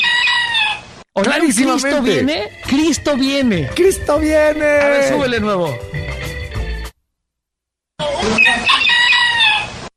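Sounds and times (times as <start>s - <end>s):
rooster crowing: 0.0s - 0.9s, 8.6s - 9.8s
speech: 1.2s - 6.0s.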